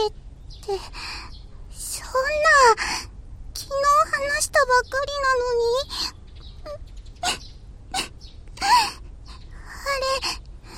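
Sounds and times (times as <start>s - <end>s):
speech: 0.0s - 1.2s, 2.2s - 7.4s, 9.9s - 10.4s
woman crying softly with whimpers and sobbing breaths: 6.7s - 9.5s.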